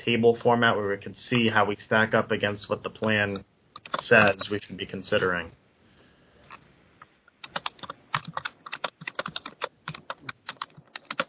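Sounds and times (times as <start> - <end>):
speech: 0.0 - 5.6
typing on a computer keyboard: 3.8 - 4.5, 7.4 - 11.2.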